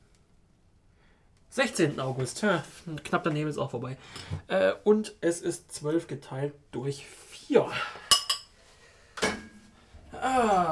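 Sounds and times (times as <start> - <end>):
speech: 1.6 - 8.0, 10.3 - 10.6
dishes and cutlery clinking while loading a dishwasher: 8.1 - 8.6
dishes clattering: 8.1 - 8.6, 9.2 - 9.6.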